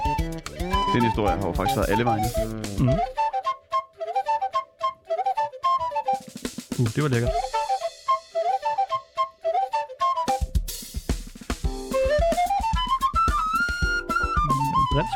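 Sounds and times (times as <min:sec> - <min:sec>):
drum beat: 0:00.0 - 0:03.2, 0:06.2 - 0:07.8, 0:10.4 - 0:15.1
whistle playing a wavering melodic tune: 0:00.0 - 0:06.4, 0:07.2 - 0:10.6, 0:11.8 - 0:15.1
backing music: 0:00.0 - 0:15.1
speech: 0:00.9 - 0:03.2, 0:06.8 - 0:07.5.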